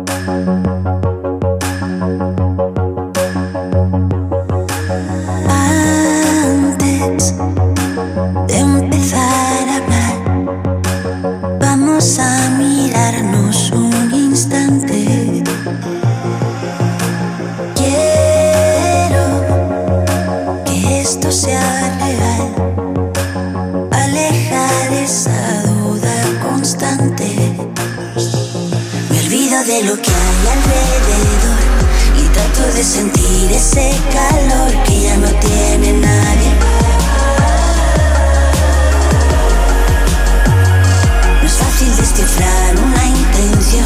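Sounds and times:
electronic music track with synth tones and deep bass: 0:00.0 - 0:43.8.

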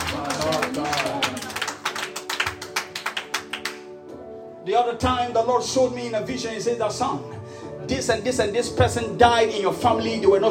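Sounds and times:
crowd clapping at a speaker's call: 0:00.0 - 0:04.0
speech: 0:04.7 - 0:10.4.

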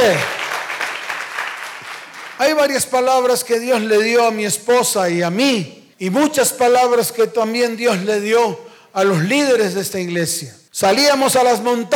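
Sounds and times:
speech: 0:00.0 - 0:00.4, 0:02.4 - 0:11.9
congregation applauding: 0:00.0 - 0:02.6.

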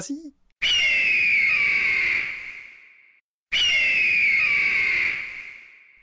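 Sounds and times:
speech: 0:00.0 - 0:00.4
golden eagle screeching: 0:00.6 - 0:02.6, 0:03.5 - 0:05.6.

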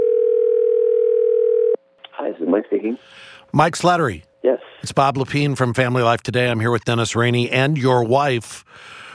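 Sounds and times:
telephone dial tone: 0:00.0 - 0:01.8
speech: 0:02.6 - 0:09.0.

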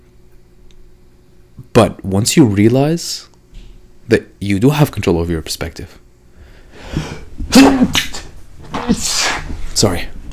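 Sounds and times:
speech: 0:01.8 - 0:03.3, 0:04.1 - 0:06.0, 0:07.6 - 0:08.0, 0:08.9 - 0:09.2, 0:09.8 - 0:10.1
soft breathing: 0:06.2 - 0:07.4
person sneezing: 0:06.8 - 0:09.6.

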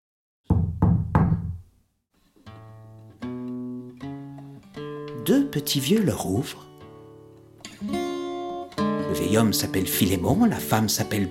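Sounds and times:
knocking on the wooden door of a small simple house: 0:00.5 - 0:01.6
speech: 0:05.3 - 0:06.7, 0:09.2 - 0:11.2.

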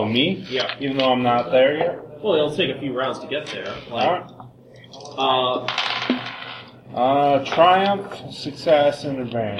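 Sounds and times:
speech: 0:00.0 - 0:05.9, 0:06.9 - 0:09.5
dice rolling across a tabletop during a tabletop game: 0:05.6 - 0:06.7.

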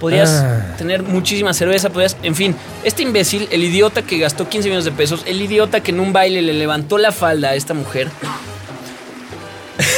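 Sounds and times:
low vocal sounds: 0:00.0 - 0:00.9
noise: 0:00.0 - 0:02.9
speech: 0:00.0 - 0:08.5
person coughing sharply: 0:09.8 - 0:09.9.

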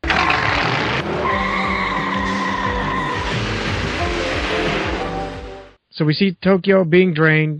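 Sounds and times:
tires squealing as several vehicles peel out: 0:00.0 - 0:05.6
roaring vehicle engines: 0:00.0 - 0:05.8
speech: 0:06.0 - 0:07.5.

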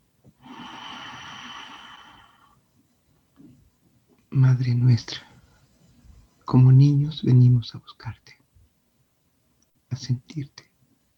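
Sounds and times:
long deep breath drawn in through the nose: 0:00.4 - 0:02.6
speech: 0:04.4 - 0:05.3, 0:06.5 - 0:08.4, 0:10.0 - 0:10.7.

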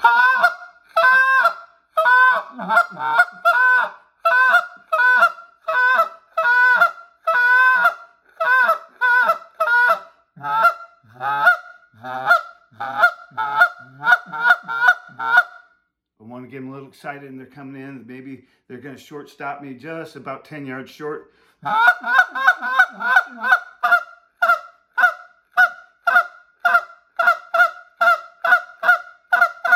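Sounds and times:
goose call blown spit moan style imitating giant Canada geese: 0:00.0 - 0:15.6, 0:21.6 - 0:29.7
speech: 0:16.9 - 0:22.2.

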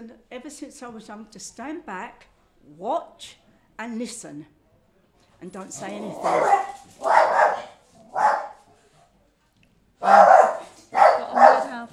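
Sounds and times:
speech: 0:00.0 - 0:04.6, 0:05.4 - 0:08.3, 0:10.1 - 0:10.3
dog barking loudly: 0:06.0 - 0:08.7, 0:10.0 - 0:11.9.

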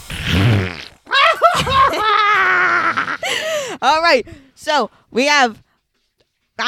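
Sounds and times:
loud buzzy fart sound effect: 0:00.0 - 0:01.8
laughter: 0:01.1 - 0:03.5
speech: 0:03.8 - 0:05.6.

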